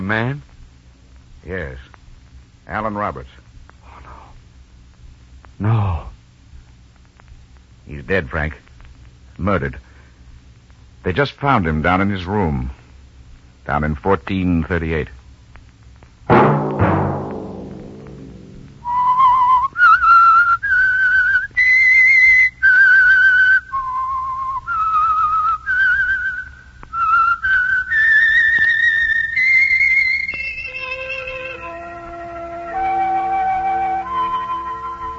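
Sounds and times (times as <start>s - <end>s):
speech: 0.1s - 0.5s, 1.4s - 2.0s, 2.7s - 3.4s, 5.6s - 6.1s, 7.9s - 8.6s, 9.4s - 9.9s, 11.0s - 12.8s, 13.6s - 15.2s
sharp opening hit: 16.3s - 18.9s
lone whistler whistling a slow theme melody: 18.8s - 35.1s.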